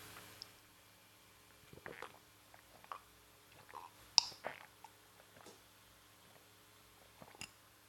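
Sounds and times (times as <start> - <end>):
low steady hum: 0.0 - 7.8
person sipping chocolate milk: 1.7 - 5.6, 6.2 - 7.6.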